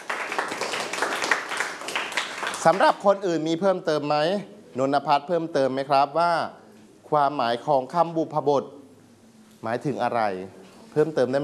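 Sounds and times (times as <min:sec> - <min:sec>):
pupils clapping in a classroom: 0:00.0 - 0:03.0
speech: 0:02.6 - 0:08.8, 0:09.6 - 0:11.4.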